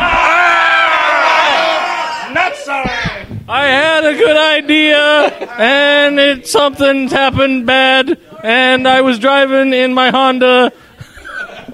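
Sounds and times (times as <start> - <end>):
several people yelling together: 0.0 - 7.2
speech: 3.5 - 10.8
laughter: 4.0 - 8.6, 10.5 - 11.7.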